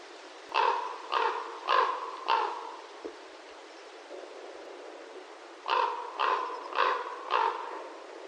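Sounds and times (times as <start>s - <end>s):
soft hiss: 0.0s - 8.2s
common raven giving metallic klonk calls in flight: 0.5s - 2.8s, 5.6s - 7.9s.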